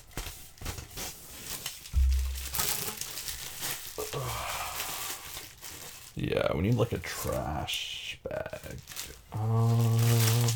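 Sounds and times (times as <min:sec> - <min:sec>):
wrapping paper crinkling and rustling while wrapping presents: 0:00.0 - 0:10.5
soft thump: 0:02.0 - 0:02.8
speech: 0:06.2 - 0:08.8.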